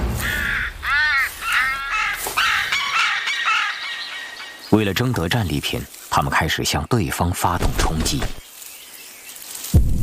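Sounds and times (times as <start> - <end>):
carrion crow cawing harshly: 0.2 - 4.6
speech: 4.7 - 8.4.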